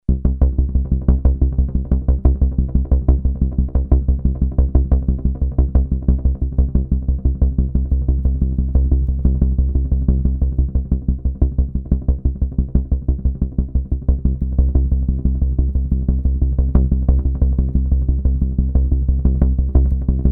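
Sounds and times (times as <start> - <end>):
analog synth bass: 0.1 - 20.3.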